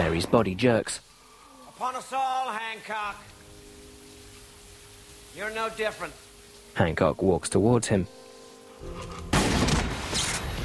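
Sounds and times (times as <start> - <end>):
speech: 0.1 - 1.1, 1.8 - 3.4, 5.4 - 6.2, 6.8 - 8.2, 8.8 - 10.6
gunshot: 9.3 - 10.6.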